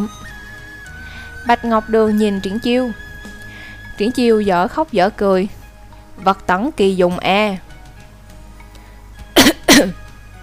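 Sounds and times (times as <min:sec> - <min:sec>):
speech: 0:00.0 - 0:00.2, 0:01.4 - 0:03.0, 0:04.0 - 0:05.6, 0:06.2 - 0:07.6, 0:09.8 - 0:10.0
dry cough: 0:09.4 - 0:10.0.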